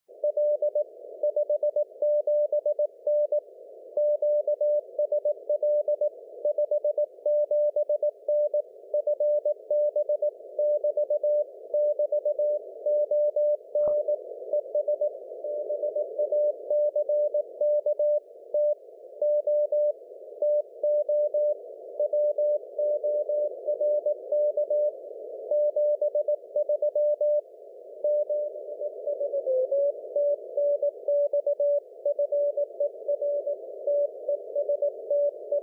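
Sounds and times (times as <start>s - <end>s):
CW radio signal on MF 472kHz: 0.1s - 35.6s.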